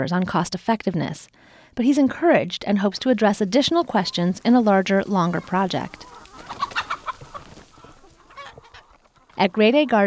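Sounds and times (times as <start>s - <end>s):
speech: 0.0s - 6.1s, 9.4s - 10.0s
egg-laying hens clucking in farm fields: 3.0s - 10.0s.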